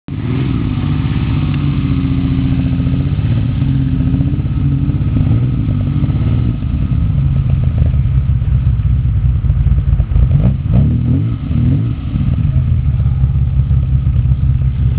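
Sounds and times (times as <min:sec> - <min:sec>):
Ferrari 250 GT SWB Competizione engine: 0:00.1 - 0:14.9.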